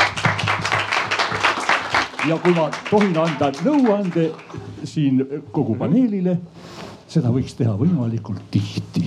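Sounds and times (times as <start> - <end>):
audience at a panel discussion applauding: 0.0 - 4.8
speech: 2.2 - 9.0.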